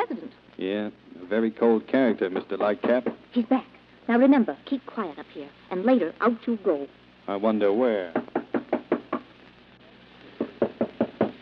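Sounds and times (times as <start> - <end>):
speech: 0.6 - 8.2
knocking on a door: 2.6 - 3.2, 8.1 - 9.2, 10.4 - 11.3.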